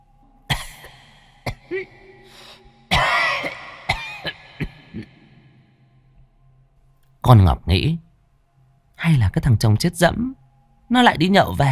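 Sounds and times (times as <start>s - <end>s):
elderly person clearing throat: 0.5s - 2.1s, 2.9s - 5.4s
elderly person coughing heavily: 0.5s - 2.2s, 2.9s - 5.4s
speech: 1.7s - 2.5s, 7.2s - 8.0s, 9.0s - 11.7s.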